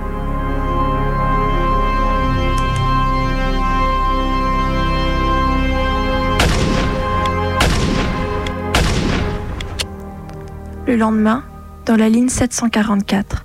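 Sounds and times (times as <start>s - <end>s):
steady low droning background: 0.0s - 13.4s
gunshots: 6.4s - 9.8s
speech: 10.9s - 13.4s.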